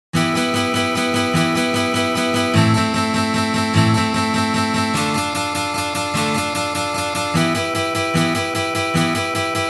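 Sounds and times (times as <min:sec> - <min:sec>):
Chechen fight music on guitar: 0:00.2 - 0:09.6.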